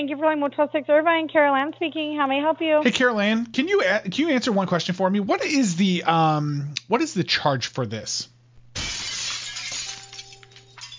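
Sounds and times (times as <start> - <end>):
speech: 0.0 - 8.3
faint hum: 0.0 - 10.9
glass being deliberately smashed in a motel room: 8.8 - 10.9
tinkling glass shards scattering and settling: 8.8 - 10.9.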